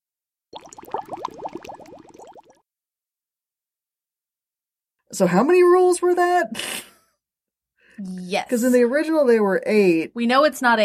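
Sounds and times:
water running and splashing into a sink: 0.6 - 2.6
speech: 5.1 - 6.9, 8.0 - 10.8.

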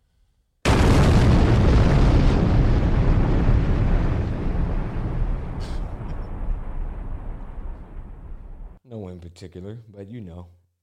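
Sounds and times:
gunshot sound effect: 0.7 - 8.8
long heavy rumbling echo of a gunshot: 0.7 - 8.8
speech: 9.2 - 10.6.

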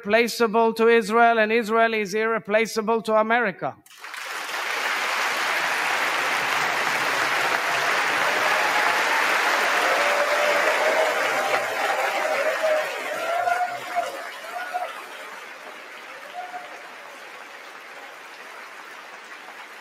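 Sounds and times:
speech: 0.0 - 4.2
large crowd applauding in a legislative chamber: 3.9 - 19.7.

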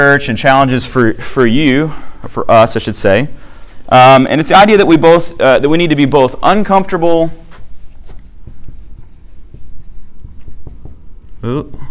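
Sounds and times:
speech: 0.0 - 7.4, 11.4 - 11.8
pen scratching across paper in quick uneven handwriting strokes: 7.6 - 11.7.

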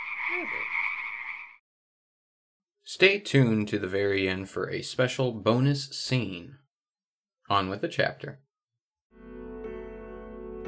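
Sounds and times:
frog croaking: 0.0 - 1.6
speech: 0.3 - 0.8, 2.9 - 6.6, 7.5 - 8.4.

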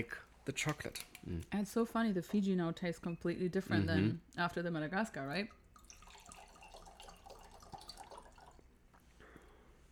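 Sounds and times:
speech: 0.0 - 5.6
bottled water pouring into glasses: 5.2 - 8.8.

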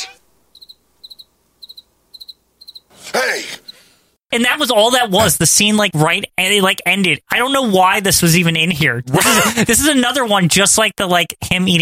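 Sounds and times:
cricket chirping in short triple pulses: 0.5 - 2.9
speech: 4.3 - 11.8.

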